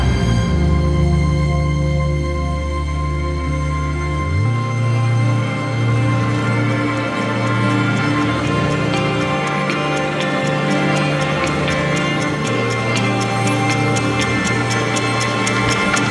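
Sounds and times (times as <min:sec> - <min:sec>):
sustained low musical tones: 0:00.0 - 0:16.1
clock ticking: 0:05.3 - 0:16.1.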